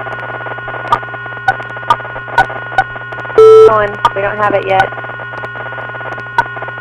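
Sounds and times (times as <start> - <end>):
steady low hum on a phone line: 0.0 - 6.8
soft regular clicks on a phone line: 0.1 - 3.4, 4.8 - 6.8
loud sharp electronic beep on a phone line: 0.9 - 4.9, 6.3 - 6.8
speech: 3.7 - 5.0.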